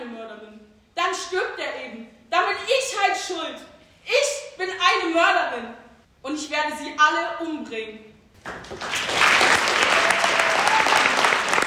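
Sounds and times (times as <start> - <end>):
speech: 1.1 - 10.0
audience applause after a school play: 8.4 - 11.6.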